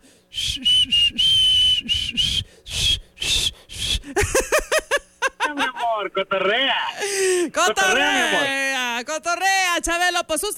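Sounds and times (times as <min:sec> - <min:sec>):
person whistling loudly: 0:00.3 - 0:04.1
faint chuckling: 0:04.1 - 0:05.9
speech: 0:06.0 - 0:10.5.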